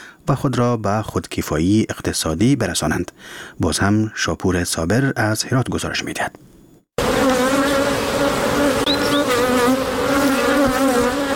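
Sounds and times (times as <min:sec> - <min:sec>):
speech: 0:00.3 - 0:06.5
many honeybees buzzing at a beekeeping site: 0:07.0 - 0:11.3
birds chirping: 0:08.8 - 0:09.4.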